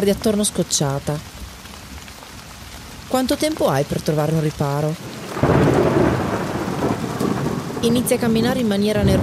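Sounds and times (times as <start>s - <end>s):
speech: 0.0s - 1.4s, 3.1s - 5.6s, 7.8s - 9.2s
heavy rain pouring down: 0.0s - 9.2s
deep rumble of thunder: 5.0s - 9.2s.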